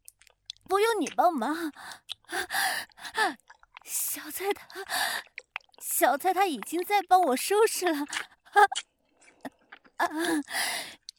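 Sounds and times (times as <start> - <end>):
speech: 0.7 - 8.9, 10.0 - 11.1
mother panting heavily after tidying up: 1.8 - 3.3, 4.7 - 5.2, 10.1 - 11.0.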